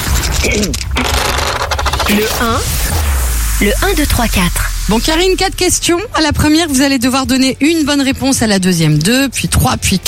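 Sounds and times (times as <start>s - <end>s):
speech: 0.4s - 1.2s, 2.1s - 10.0s
dice being rolled, rattling and clattering: 0.7s - 2.4s.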